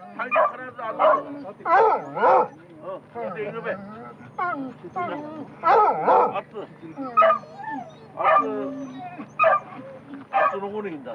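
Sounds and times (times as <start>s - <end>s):
hunting dogs barking during a deer drive hunt on the Oshika Peninsula: 0.2s - 2.6s, 5.6s - 6.5s, 7.1s - 10.7s
hunting dogs whimpering and whining: 4.1s - 10.3s.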